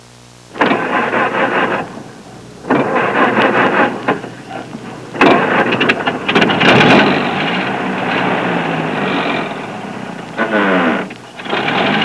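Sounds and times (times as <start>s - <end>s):
Ford car sounds: 0.5s - 12.0s.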